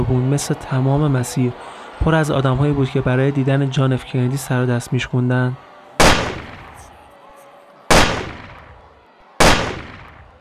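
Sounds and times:
speech: 0:00.0 - 0:05.7
rifle shots fired at a presidential motorcade: 0:06.0 - 0:06.8, 0:07.9 - 0:08.6, 0:09.4 - 0:10.2.

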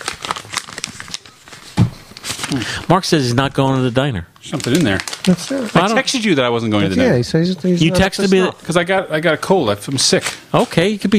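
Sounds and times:
paper crinkling and rustling as cards and letters are handled: 0:00.0 - 0:02.7, 0:04.4 - 0:06.4
speech: 0:02.5 - 0:11.1.

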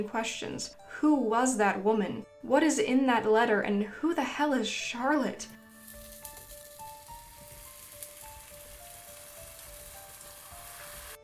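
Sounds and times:
speech: 0:00.0 - 0:05.6
thick white batter sizzling on a cast iron pan: 0:05.6 - 0:11.2.

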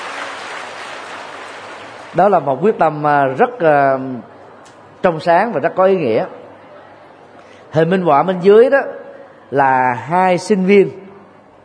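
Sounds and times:
dense crackling audience applause: 0:00.0 - 0:02.2
speech: 0:02.1 - 0:04.3, 0:05.0 - 0:06.4, 0:07.7 - 0:11.0.

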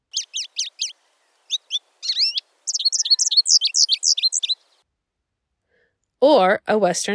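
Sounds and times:
American goldfinch calling in high bright chirps: 0:00.0 - 0:04.8
speech: 0:06.2 - 0:07.1.

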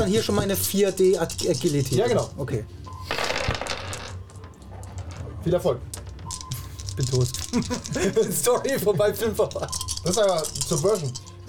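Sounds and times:
speech: 0:00.0 - 0:03.2, 0:05.4 - 0:06.0, 0:07.0 - 0:11.4
dice rolled across a tabletop in a game: 0:00.0 - 0:11.4
laughter: 0:07.3 - 0:09.7.

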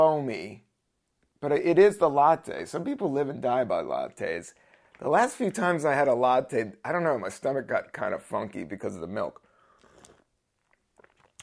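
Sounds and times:
speech: 0:00.0 - 0:00.7, 0:01.4 - 0:09.4
ice cubes crunched between teeth: 0:09.8 - 0:11.4.

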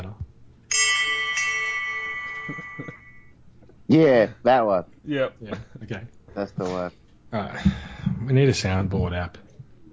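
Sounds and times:
single bright bell ringing: 0:00.7 - 0:03.4
speech: 0:03.9 - 0:09.4.

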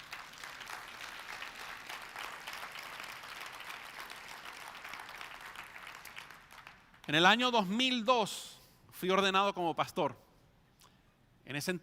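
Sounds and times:
large crowd applauding: 0:00.0 - 0:07.1
speech: 0:07.1 - 0:10.2, 0:11.5 - 0:11.8.

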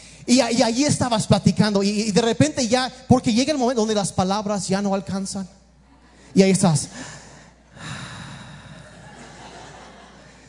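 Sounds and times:
speech: 0:00.3 - 0:05.6, 0:06.3 - 0:07.2
person imitating slow heavy breathing over a telephone call: 0:06.9 - 0:09.0
laughter: 0:08.7 - 0:10.4.

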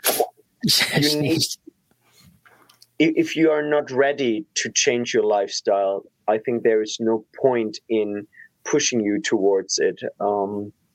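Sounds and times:
sneeze: 0:00.0 - 0:01.2
speech: 0:00.6 - 0:01.6, 0:03.0 - 0:10.8.

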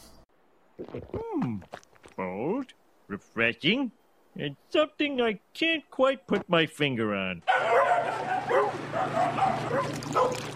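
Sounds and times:
speech: 0:00.9 - 0:10.5
dog yelping barks and whines: 0:07.4 - 0:10.5.

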